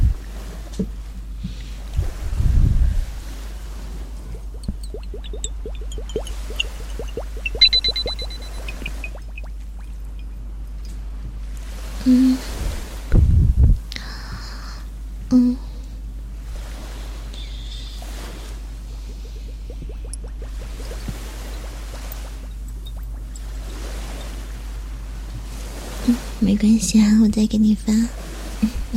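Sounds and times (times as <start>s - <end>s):
water splashing and sloshing: 0.0s - 13.1s, 16.4s - 26.4s, 28.1s - 28.9s
speech: 26.5s - 28.2s.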